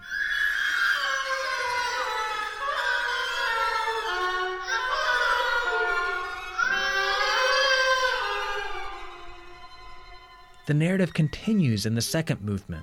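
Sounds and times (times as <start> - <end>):
strings in an orchestral piece: 0.9 - 12.8
oboe in an orchestral piece mimicking a baby babbling: 4.6 - 8.7
speech: 10.7 - 12.8.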